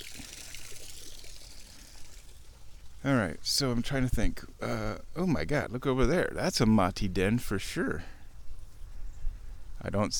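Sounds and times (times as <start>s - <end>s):
water trickling over a small waterfall: 0.0s - 5.7s
speech: 3.0s - 8.2s, 9.8s - 10.1s.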